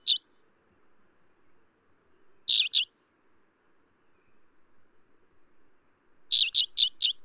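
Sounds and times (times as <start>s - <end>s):
Alpine accentor chirping: 0.0s - 0.4s, 2.2s - 2.9s, 6.3s - 7.2s.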